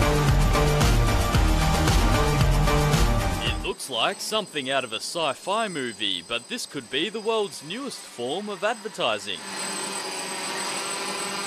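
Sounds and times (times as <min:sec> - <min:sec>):
drone hovering overhead with rotors whirring: 0:00.0 - 0:11.4
speech: 0:03.9 - 0:09.8.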